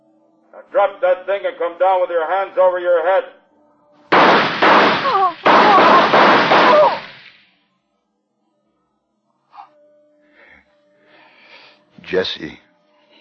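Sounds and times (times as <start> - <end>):
speech: 0.6 - 3.4, 12.1 - 12.6
dense volley of gunshots fired at a person: 4.1 - 7.4
person crying out: 5.0 - 7.1.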